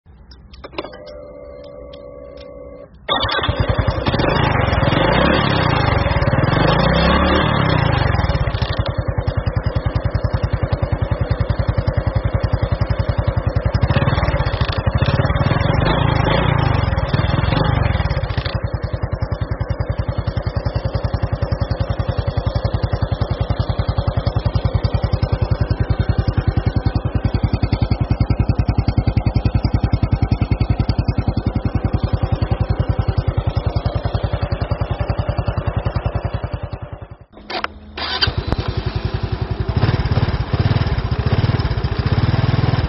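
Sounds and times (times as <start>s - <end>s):
motorbike engine starting: 0.2s - 42.8s.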